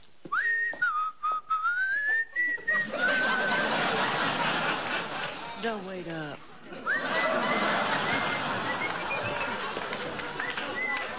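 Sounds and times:
person whistling a lilting tune: 0.3 - 3.2, 8.5 - 9.6, 10.4 - 11.1
laughter: 2.5 - 5.6, 6.7 - 11.1
crowd noise: 2.6 - 11.1
speech: 5.6 - 6.8.

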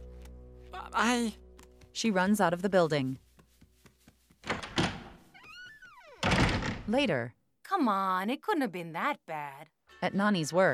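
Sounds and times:
speech: 0.8 - 1.4, 2.0 - 3.2, 6.9 - 10.7
door slamming shut with a heavy thud: 4.4 - 5.2, 6.1 - 6.9.

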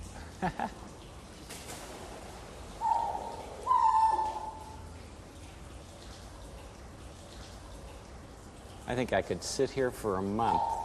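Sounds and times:
speech: 0.4 - 0.8, 8.9 - 10.8
ground cuckoo hooting calls: 2.5 - 5.0, 10.2 - 10.8.

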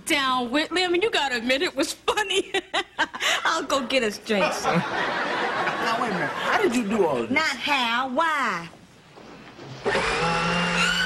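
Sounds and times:
speech: 0.1 - 8.8
laughter: 4.4 - 6.8
kitchen blender whirring: 9.8 - 11.0.

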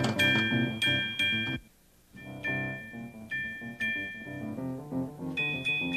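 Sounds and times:
toy trolley bell ringing: 0.0 - 1.6, 2.2 - 4.5, 5.4 - 5.9
light musical accompaniment: 0.0 - 5.9.

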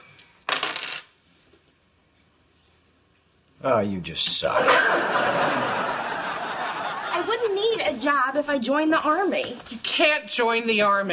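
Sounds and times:
dice tossed onto a hard surface clattering: 0.5 - 1.1
speech: 3.6 - 5.8, 7.3 - 11.1
laughter: 4.5 - 7.9.

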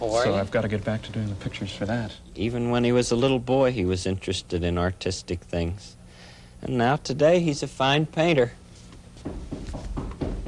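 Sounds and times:
speech: 0.0 - 6.0, 6.6 - 8.6
firm knocking on a back door: 9.2 - 10.4.

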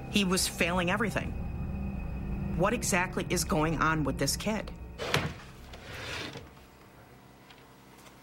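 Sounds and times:
speech: 0.1 - 1.4, 2.6 - 5.3
drawer sliding open with a rough scrape: 5.0 - 6.5.

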